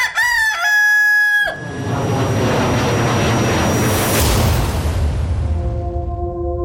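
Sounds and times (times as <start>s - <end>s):
rooster crowing loudly: 0.0s - 1.8s
steady humming tones: 1.5s - 6.6s
long rushing roar: 1.6s - 5.7s.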